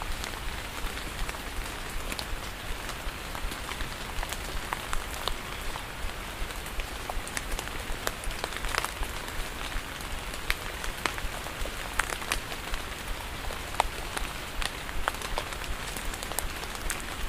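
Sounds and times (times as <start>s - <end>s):
rain: 0.0s - 17.2s.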